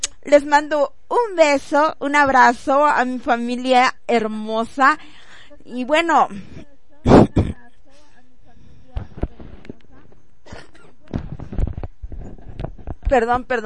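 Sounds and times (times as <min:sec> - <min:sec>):
speech: 0:00.3 - 0:07.3, 0:13.1 - 0:13.6
quieter throat noises: 0:06.3 - 0:13.0
harsh rough breathy coughs: 0:10.5 - 0:11.0.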